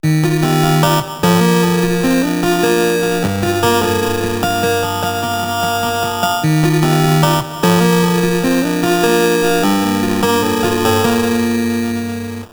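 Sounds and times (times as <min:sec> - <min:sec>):
medium bit crusher distortion: 0:00.0 - 0:12.5.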